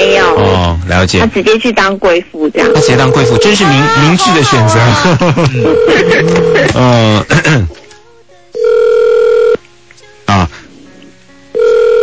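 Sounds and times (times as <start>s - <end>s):
speech: 0.9s - 7.8s
mobile phone ringback tone: 2.6s - 3.9s, 5.6s - 6.7s, 8.6s - 9.6s, 11.5s - 12.0s
laughter: 3.6s - 7.7s.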